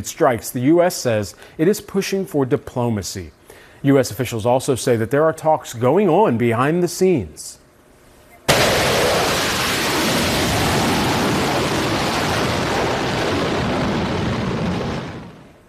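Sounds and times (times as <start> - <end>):
speech: 0.0 - 7.6
fighter jets launching from an aircraft carrier: 8.5 - 15.6.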